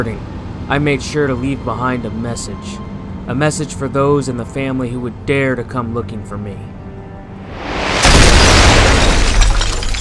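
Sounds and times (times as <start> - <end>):
speech: 0.0 - 6.7
mansion explosion blast: 7.5 - 9.9
crackling rumbling debris from explosion: 7.8 - 9.9.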